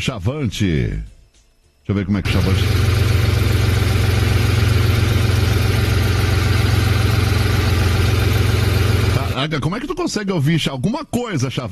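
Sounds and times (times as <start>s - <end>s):
speech: 0.0s - 1.1s, 1.9s - 3.0s, 9.4s - 11.6s
truck engine idling heard from inside the cab: 2.3s - 9.4s.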